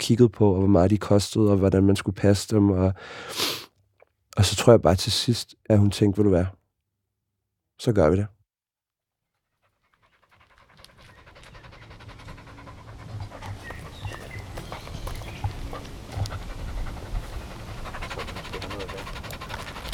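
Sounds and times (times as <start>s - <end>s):
speech: 0.0s - 3.6s, 4.4s - 6.6s, 7.8s - 8.4s
small dog panting rapidly: 9.5s - 19.9s.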